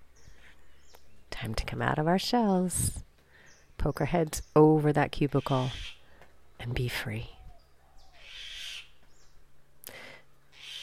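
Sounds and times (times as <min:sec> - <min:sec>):
speech: 0:01.4 - 0:03.0, 0:03.8 - 0:05.8, 0:06.6 - 0:07.4
mynah bird calling on the Big Island of Hawaii: 0:05.3 - 0:06.0, 0:07.5 - 0:09.0, 0:10.5 - 0:10.8.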